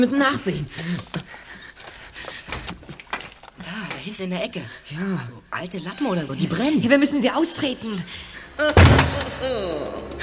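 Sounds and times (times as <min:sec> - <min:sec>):
speech: 0:00.0 - 0:01.4, 0:04.1 - 0:10.2
door slamming shut: 0:08.6 - 0:09.5.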